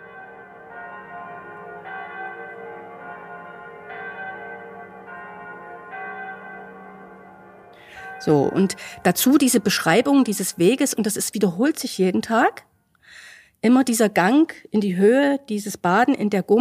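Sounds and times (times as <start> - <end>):
church bells ringing: 0.0 - 12.2
speech: 8.2 - 12.7, 13.6 - 16.6.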